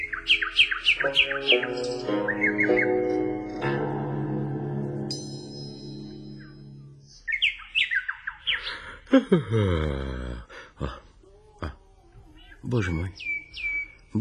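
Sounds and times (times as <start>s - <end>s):
bird singing: 0.0s - 3.8s, 5.0s - 9.1s, 11.3s - 14.1s
speech: 1.0s - 2.8s, 9.1s - 11.0s, 12.7s - 14.1s.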